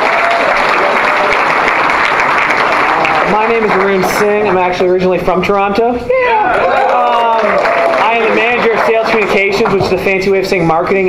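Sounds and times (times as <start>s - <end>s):
room full of people applauding: 0.0s - 4.9s, 6.4s - 10.2s
speech: 3.3s - 11.0s.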